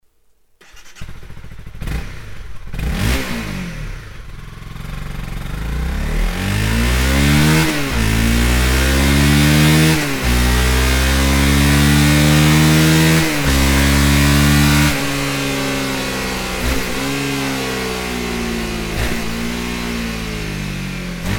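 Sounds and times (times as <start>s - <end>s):
stock exhaust of Honda CBR 250R motorcycle: 1.0s - 21.3s.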